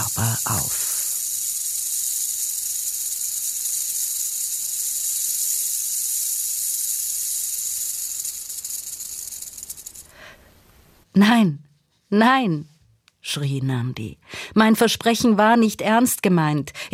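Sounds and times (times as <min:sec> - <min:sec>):
snake hissing at the entrance of a hut: 0:00.0 - 0:10.2
speech: 0:11.2 - 0:12.7, 0:13.3 - 0:16.9.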